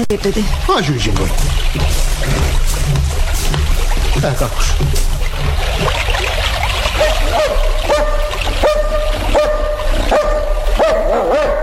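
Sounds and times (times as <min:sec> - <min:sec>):
speech: 0:00.0 - 0:08.2
outdoor noise: 0:00.0 - 0:11.6
dog barking: 0:07.0 - 0:11.6.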